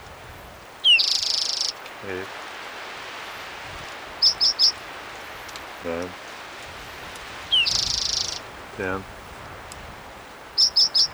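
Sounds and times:
faint steady hiss: 0.0s - 11.1s
bird trilling: 0.8s - 2.2s, 4.2s - 4.8s, 7.5s - 9.0s, 10.5s - 11.1s
speech: 2.0s - 2.4s, 5.8s - 6.2s, 8.8s - 9.2s.

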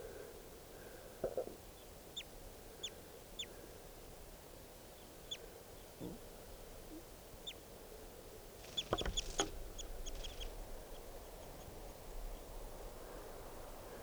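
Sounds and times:
steady outdoor noise: 0.0s - 14.0s
wild birds chirping: 6.8s - 14.0s.

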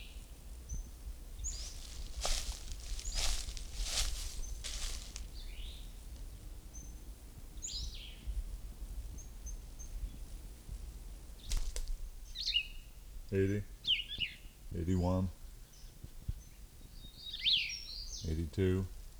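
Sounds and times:
bird calling in short high thin chirps: 0.0s - 8.4s, 12.2s - 18.7s
low hiss: 0.0s - 19.1s.

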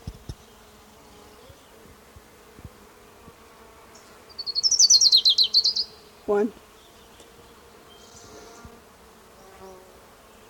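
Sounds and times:
ground warbler song trill: 4.3s - 6.0s
speech: 6.3s - 6.6s.

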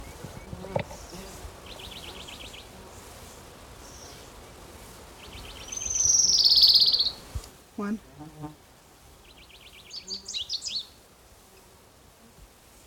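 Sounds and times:
Orange-crowned Warbler song: 0.0s - 3.1s, 3.8s - 4.3s, 5.2s - 7.2s, 9.2s - 11.0s
speech: 7.8s - 8.6s.

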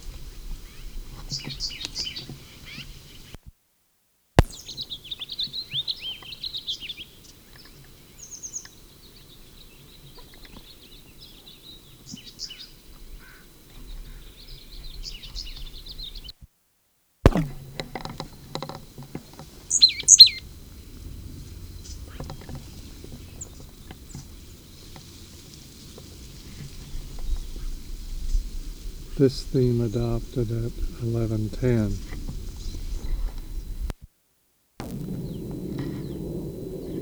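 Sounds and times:
bird chirping in answer to another bird: 0.0s - 3.4s, 4.4s - 16.3s, 17.3s - 33.9s, 34.8s - 37.0s
speech: 1.3s - 1.8s, 29.2s - 32.3s
sharp thump: 17.3s - 19.4s.

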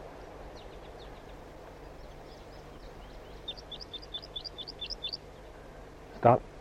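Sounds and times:
steady background hum: 0.0s - 6.5s
flight calls of wild crossbills drawn in by a captive bird: 0.6s - 5.4s.

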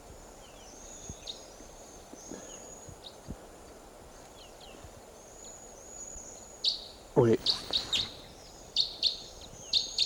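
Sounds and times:
high sharp bird flight calls: 6.6s - 10.0s
speech: 7.2s - 7.7s.

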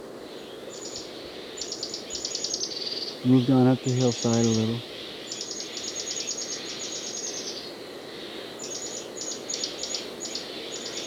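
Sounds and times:
outdoor background: 0.0s - 11.0s
Mexican jays calling: 3.2s - 4.8s
speech: 3.2s - 4.9s.

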